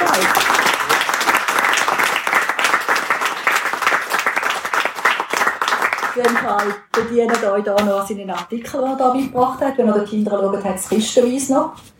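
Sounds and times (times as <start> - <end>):
audience applauding a speaker: 0.0 - 6.9
speech: 6.2 - 11.9.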